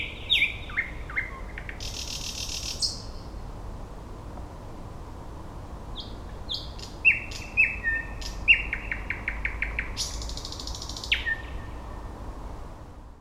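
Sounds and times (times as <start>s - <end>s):
Thrush Nightingale Luscinia luscinia song: 0.0s - 3.4s, 5.9s - 12.2s.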